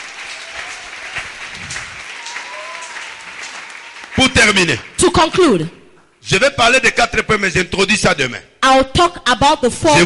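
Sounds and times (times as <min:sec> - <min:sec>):
audience applause during a bilingual French and English teaching: 0:00.0 - 0:06.2
speech: 0:04.4 - 0:10.0.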